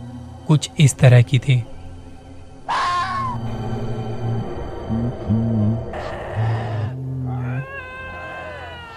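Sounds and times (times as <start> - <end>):
speech: 0.5 - 1.7
low droning moan: 2.6 - 8.9
animal screaming over a phone call: 2.7 - 3.4, 5.9 - 8.9.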